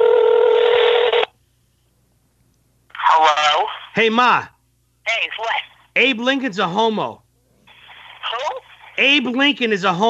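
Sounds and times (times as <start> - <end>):
telephone dialing tone: 0.0 - 1.3
speech: 4.0 - 4.5, 5.1 - 7.2, 9.0 - 10.0.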